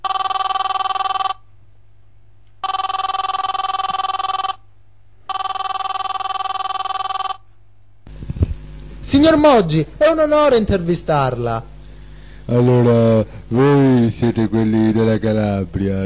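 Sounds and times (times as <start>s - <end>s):
telephone ringing on an outgoing call: 0.0s - 1.5s, 2.6s - 7.5s
speech: 9.1s - 11.7s, 12.5s - 16.0s.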